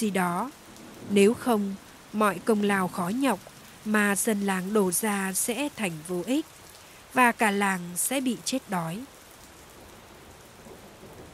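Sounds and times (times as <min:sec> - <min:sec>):
speech: 0:00.0 - 0:09.1
heavy rain: 0:00.0 - 0:11.3
low thunder rumbling: 0:00.4 - 0:04.8, 0:10.6 - 0:11.3.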